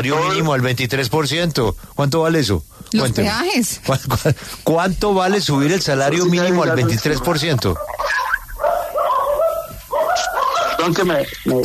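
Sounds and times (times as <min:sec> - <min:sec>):
speech: 0:00.0 - 0:08.2, 0:10.8 - 0:11.6
small dogs barking and yipping: 0:06.4 - 0:11.6.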